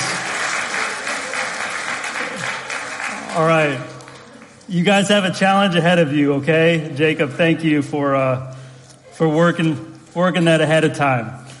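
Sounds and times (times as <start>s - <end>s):
audience applause: 0.0s - 4.6s
speech: 3.4s - 4.0s, 4.7s - 8.6s, 9.2s - 11.4s.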